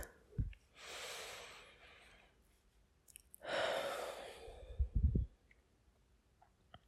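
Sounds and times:
slow deep breaths in and out: 0:00.0 - 0:02.6, 0:03.4 - 0:05.4
soft low thumps: 0:04.8 - 0:05.3.

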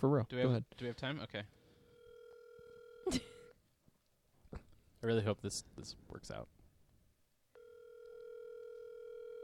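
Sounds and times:
speech: 0:00.0 - 0:01.6, 0:03.1 - 0:03.3, 0:05.0 - 0:06.6
phone ringback tone through a speakerphone: 0:01.8 - 0:03.1, 0:07.6 - 0:09.4.

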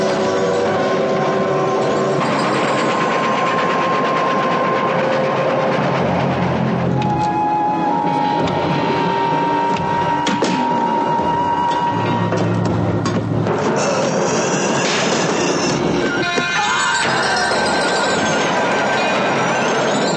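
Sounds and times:
high metallic squeals and whines of train: 0:00.0 - 0:06.2, 0:06.8 - 0:20.1
train rolling on rails with rumble and clatter: 0:00.0 - 0:20.1.

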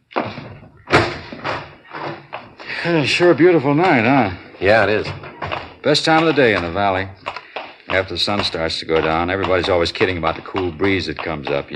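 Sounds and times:
door opened and shut with solid thuds and knocks: 0:00.2 - 0:02.6, 0:04.7 - 0:06.6
speech: 0:02.8 - 0:05.2, 0:05.8 - 0:07.2, 0:07.9 - 0:11.7.

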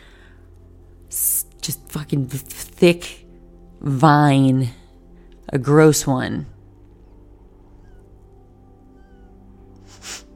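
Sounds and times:
low steady hum: 0:00.0 - 0:10.3
speech: 0:01.7 - 0:03.2, 0:03.8 - 0:04.8, 0:05.5 - 0:06.5
high-pitched nasal squeak: 0:07.0 - 0:08.1.

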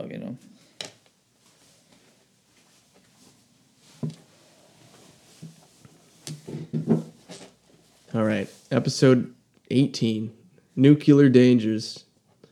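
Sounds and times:
speech: 0:00.0 - 0:00.9, 0:08.2 - 0:12.1
soft shuffling and handling noises: 0:00.4 - 0:09.2.

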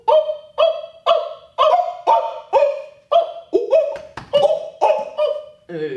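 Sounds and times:
person imitating a monkey alarm call with barking hoots: 0:01.6 - 0:05.9.

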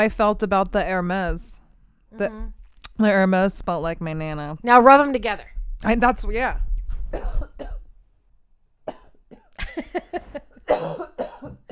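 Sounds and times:
speech: 0:00.0 - 0:07.7
person clearing throat: 0:07.1 - 0:07.9, 0:10.7 - 0:11.6
person coughing: 0:07.1 - 0:07.9, 0:10.5 - 0:11.6.

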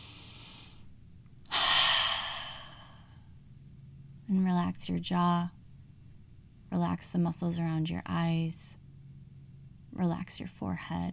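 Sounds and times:
deep breath during a guided relaxation exercise: 0:00.0 - 0:00.8, 0:01.5 - 0:03.2
speech: 0:04.3 - 0:05.6, 0:06.7 - 0:08.8, 0:10.0 - 0:11.1.

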